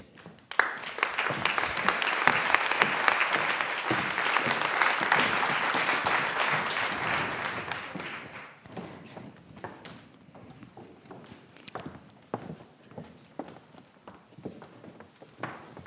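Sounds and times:
audience applause welcoming speakers onto a panel: 0.5s - 8.6s.

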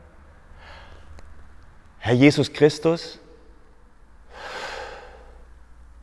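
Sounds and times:
deep inhalation during a prayer breathing exercise: 0.6s - 1.1s, 4.3s - 5.6s
speech: 2.1s - 3.2s.

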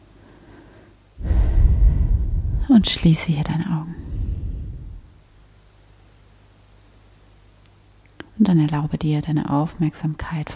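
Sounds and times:
deep breath taken at the start of a guided meditation: 0.2s - 2.8s, 3.9s - 5.2s
speech: 2.7s - 4.1s, 8.5s - 10.5s.

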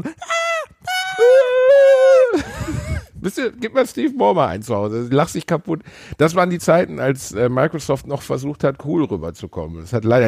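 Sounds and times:
speech: 0.0s - 0.3s, 3.3s - 10.2s
man screaming ecstatically on stage: 0.0s - 2.5s.

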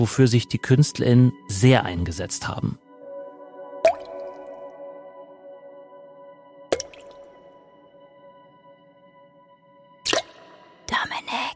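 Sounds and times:
speech: 0.0s - 2.8s
water drops plopping: 3.8s - 4.6s, 6.7s - 7.4s, 10.1s - 10.4s.

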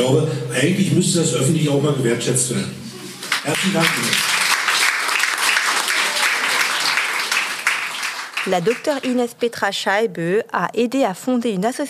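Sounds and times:
speech: 0.0s - 4.4s, 8.4s - 11.8s
applause from a sizable audience: 3.0s - 9.2s.

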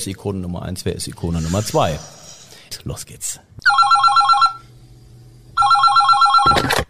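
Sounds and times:
speech: 0.0s - 2.2s, 2.8s - 3.5s
telephone ringing: 3.6s - 4.7s, 5.6s - 6.8s.

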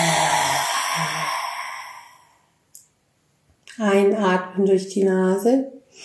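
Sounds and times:
forceful exhale through a wide-open mouth with tongue out, making a low voiced tone: 0.0s - 2.5s
speech: 3.8s - 6.0s.

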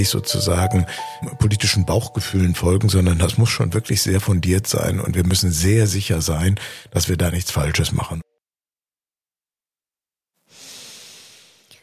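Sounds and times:
speech: 0.0s - 8.2s
deep breath in and out: 0.9s - 1.2s, 6.6s - 6.9s, 10.5s - 11.8s.

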